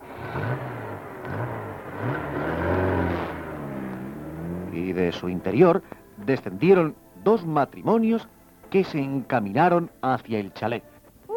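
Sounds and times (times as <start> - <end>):
car engine approaching a country estate at night: 0.0 - 6.8
speech: 4.8 - 10.9.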